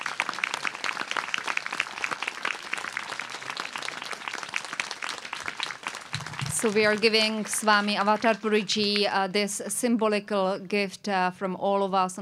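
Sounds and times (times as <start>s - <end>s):
audience applause honouring a swami: 0.0s - 9.1s
speech: 6.6s - 12.1s.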